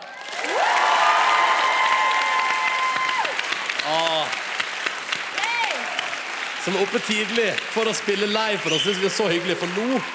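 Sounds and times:
studio audience applause: 0:00.0 - 0:10.1
speech: 0:06.6 - 0:10.1
high whistles from studio audience: 0:08.6 - 0:09.4.

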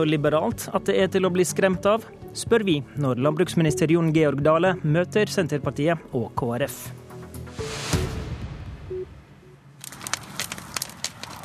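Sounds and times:
speech: 0:00.0 - 0:07.0
beacon bonfire lit by farmers in winter crackling: 0:09.7 - 0:11.4.

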